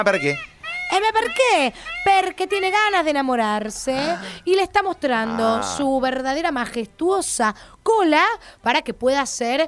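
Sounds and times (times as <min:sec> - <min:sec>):
peacock calling: 0:00.0 - 0:04.4
speech: 0:00.0 - 0:09.6.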